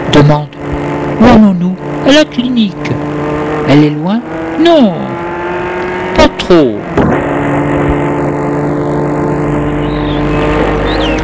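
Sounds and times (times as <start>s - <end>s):
car engine drone while driving and stopping: 0.0s - 11.2s
car road noise: 0.0s - 11.2s
speech: 0.3s - 0.6s, 1.2s - 3.1s, 3.7s - 5.1s, 6.5s - 7.0s.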